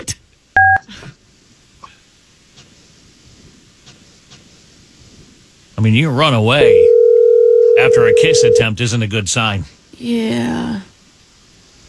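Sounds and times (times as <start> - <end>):
speech: 5.8 - 6.9, 7.9 - 10.9
touch-tone beep from a phone keypad: 6.6 - 8.6.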